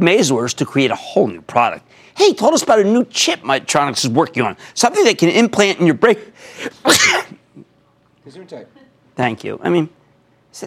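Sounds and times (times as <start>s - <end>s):
speech: 0.0s - 7.4s, 8.3s - 10.0s
loud sharp sneeze: 6.7s - 7.4s.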